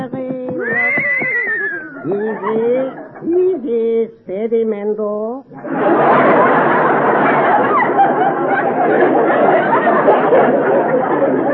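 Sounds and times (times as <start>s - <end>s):
horse rented from a riding academy whinnying: 0.6s - 2.2s
laughter: 0.6s - 3.6s, 5.5s - 11.5s
speech: 2.1s - 6.8s, 7.4s - 11.5s.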